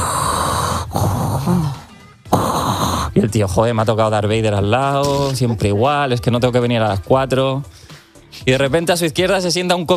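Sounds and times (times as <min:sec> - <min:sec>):
person imitating heavy wheezing breathing of a very old woman: 0:00.0 - 0:03.2
speech: 0:03.2 - 0:09.9.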